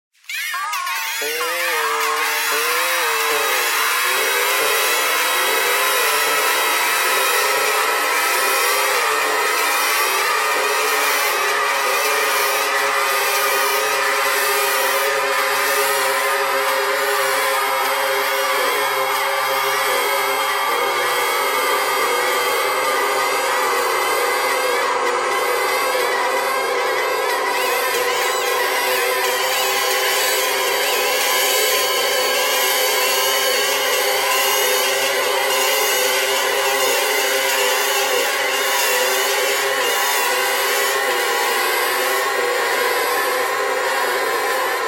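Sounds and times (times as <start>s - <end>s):
bagpipe: 0.2s - 44.8s.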